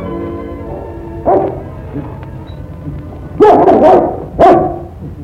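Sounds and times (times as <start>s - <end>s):
dog barking: 0.7s - 2.1s, 3.4s - 5.0s.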